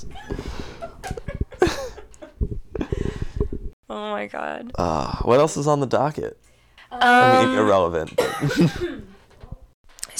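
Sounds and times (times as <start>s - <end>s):
speech: 3.9s - 9.1s
person coughing: 8.2s - 9.2s.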